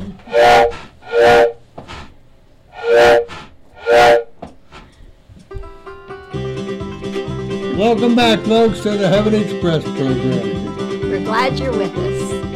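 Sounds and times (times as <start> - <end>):
steam train whistle blowing shrill blasts: 0.2 - 1.6, 2.7 - 4.4
bright music: 5.6 - 12.5
speech: 7.8 - 10.6, 11.3 - 12.4.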